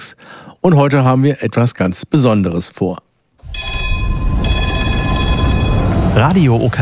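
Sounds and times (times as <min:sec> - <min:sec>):
speech: 0:00.6 - 0:03.1, 0:06.1 - 0:06.8
historic tram rolling along rails between the main station and Radeklint: 0:03.4 - 0:06.8
thin high mechanical whine of a tram: 0:03.4 - 0:06.8.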